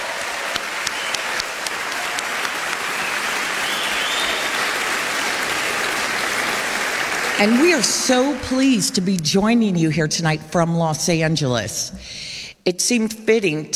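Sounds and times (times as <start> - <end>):
large audience applauding: 0.0 - 8.9
speech: 7.4 - 13.7.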